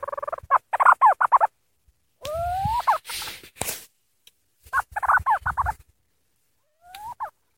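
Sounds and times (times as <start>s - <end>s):
bird calls with gobbling notes and rising yelp: 0.0s - 1.6s, 2.2s - 3.4s, 4.6s - 5.9s, 6.6s - 7.4s.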